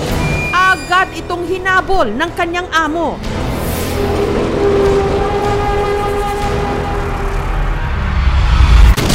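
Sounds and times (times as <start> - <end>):
speech: 1.0 - 4.9
train approaching on the tracks: 3.9 - 8.8.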